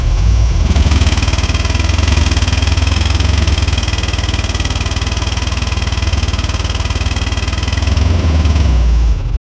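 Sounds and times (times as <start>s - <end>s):
mid range diesel engine accelerating: 0.0s - 9.4s.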